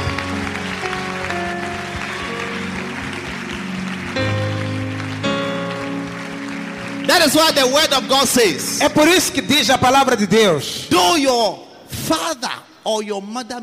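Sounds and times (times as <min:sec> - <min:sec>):
audience clapping hands during a church service: 0:00.0 - 0:10.2
speech: 0:07.2 - 0:13.6.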